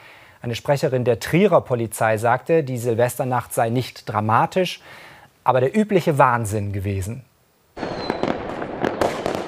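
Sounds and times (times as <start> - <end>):
speech: 0.4 - 7.3
New Year's Eve fireworks exploding: 7.8 - 9.4.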